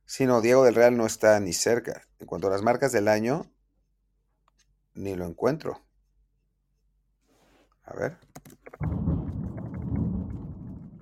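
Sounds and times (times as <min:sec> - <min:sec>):
speech: 0:00.1 - 0:03.6, 0:05.0 - 0:05.9, 0:07.9 - 0:09.1
thunder rumbling: 0:08.8 - 0:11.0.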